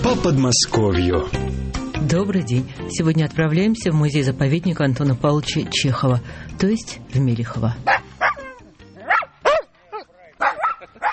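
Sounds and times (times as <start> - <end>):
speech: 0.1 - 8.1
dachshund barking in sharp high yaps: 7.9 - 11.1.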